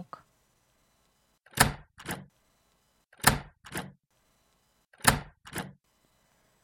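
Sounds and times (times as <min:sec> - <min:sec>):
door closing and locking: 0:01.5 - 0:02.3, 0:03.2 - 0:04.0, 0:05.0 - 0:05.8.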